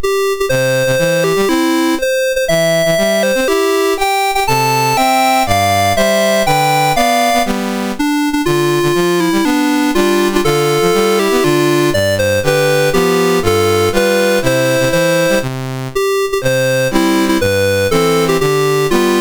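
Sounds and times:
national anthem on a MOS6581R2 sound chip: 0.0 - 19.1.

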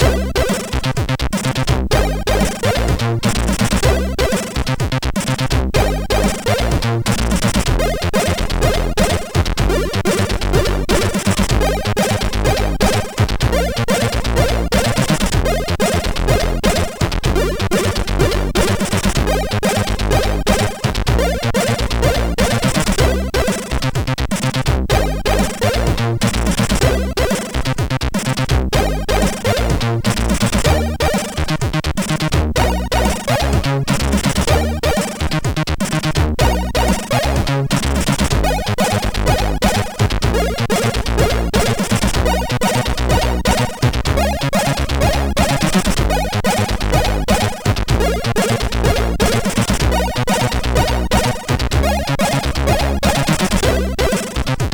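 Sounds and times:
chiptune intro music from a SID chip: 0.0 - 54.7.

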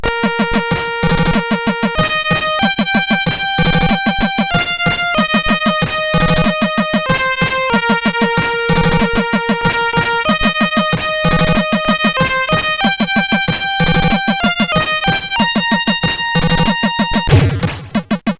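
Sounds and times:
SID CSG8580R5 chip music: 0.0 - 18.3.

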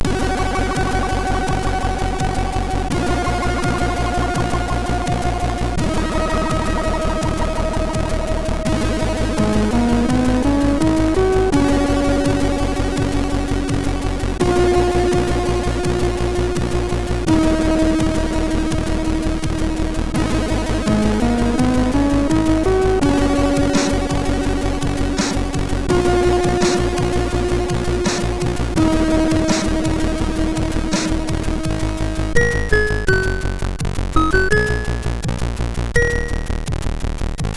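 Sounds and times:
samba music on MOS6581R4 sound chip: 0.0 - 36.8.

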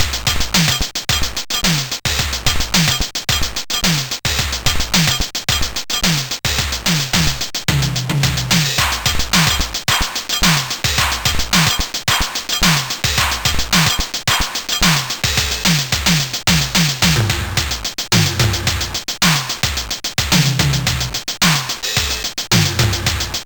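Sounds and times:
digitized drums on MOS6581R4 SID chip: 0.0 - 23.4.

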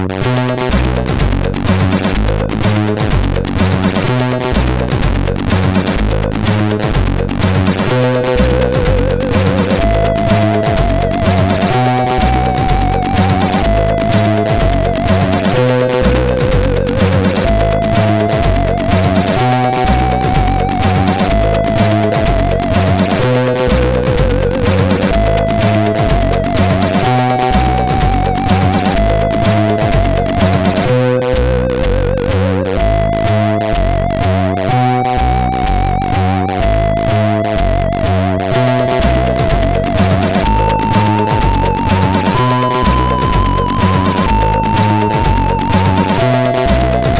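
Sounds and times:
synthesized flute from a SID CSG8580R5 chip: 0.2 - 47.1.

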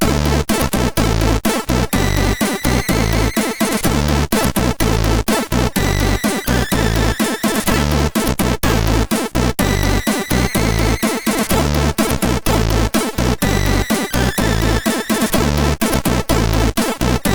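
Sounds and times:
SID chip CSG8580R5 synth: 0.0 - 17.3.

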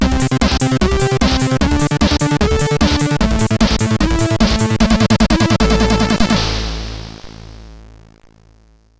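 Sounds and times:
trance music: 0.0 - 8.3.

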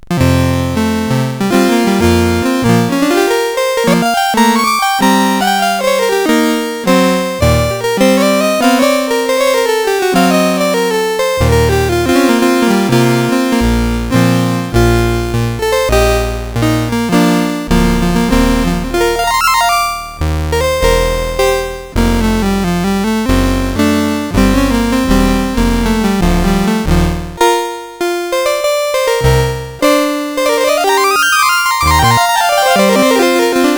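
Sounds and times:
improvised music on CSG8580R5: 0.1 - 33.7.

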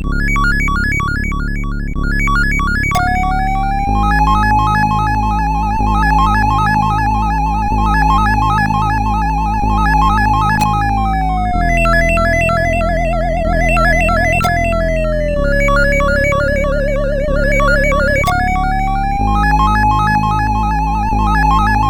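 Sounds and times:
epic intro music on a SID MOS6581R4 chip: 0.2 - 21.8.

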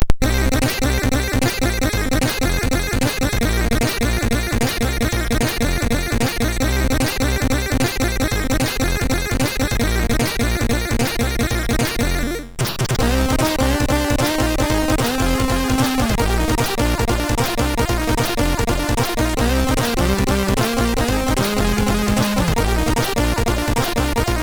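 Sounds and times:
chiptune music on a MOS6581R3 chip: 0.2 - 24.4.

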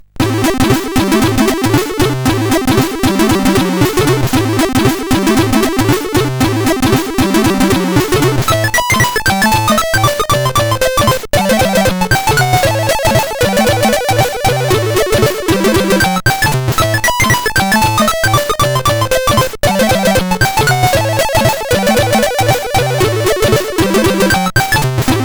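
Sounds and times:
SID CSG8580R5 chip intro music: 0.2 - 25.2.

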